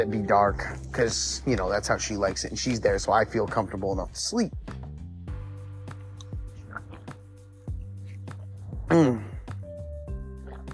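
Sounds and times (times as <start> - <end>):
speech: 0.0 - 4.7, 8.9 - 9.2
person drinking water: 6.2 - 10.7.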